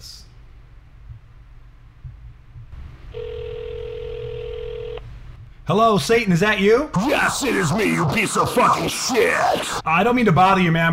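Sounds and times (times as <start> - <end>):
low rumbling background: 0.0 - 4.4, 5.0 - 8.2
telephone dial tone: 3.2 - 5.0
speech: 5.7 - 10.9.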